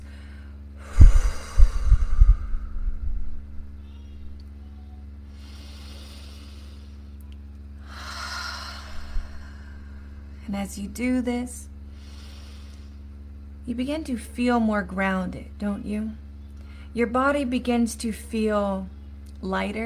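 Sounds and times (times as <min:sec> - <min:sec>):
slow deep breathing in and exhaling: 0:00.0 - 0:03.8, 0:05.3 - 0:07.2, 0:07.8 - 0:10.4, 0:11.8 - 0:13.2
steady low hum: 0:00.0 - 0:19.8
speech: 0:10.5 - 0:11.7, 0:13.7 - 0:16.2, 0:17.0 - 0:19.8.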